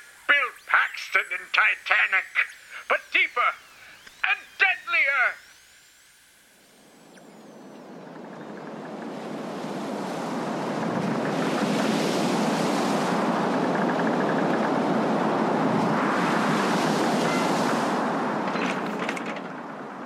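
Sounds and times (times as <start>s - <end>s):
speech: 1.2s - 3.7s, 4.3s - 5.4s
rough sea surf crashing: 8.6s - 20.0s.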